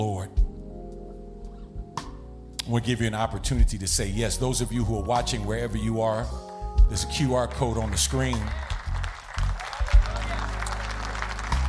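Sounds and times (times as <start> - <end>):
speech: 0.0 - 0.4, 2.7 - 8.6
church congregation applauding: 7.4 - 11.6.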